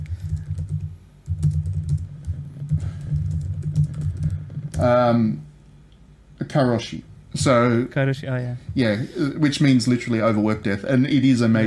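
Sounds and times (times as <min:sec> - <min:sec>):
computer keyboard typing: 0:00.0 - 0:04.9
low constant hum: 0:00.0 - 0:11.6
speech: 0:04.8 - 0:05.4, 0:06.5 - 0:11.6.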